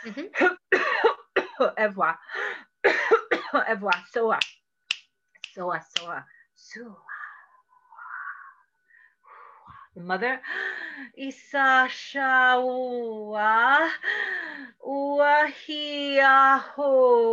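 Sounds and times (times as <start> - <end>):
speech: 0.0 - 0.6, 1.6 - 2.4, 3.5 - 4.5, 5.6 - 7.1, 10.0 - 17.3
person coughing: 2.9 - 3.6.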